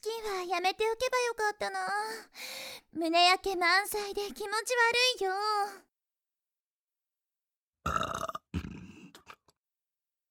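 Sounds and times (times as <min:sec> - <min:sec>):
speech: 0:00.0 - 0:05.9
young woman burping after overeating fried chicken: 0:07.8 - 0:09.0.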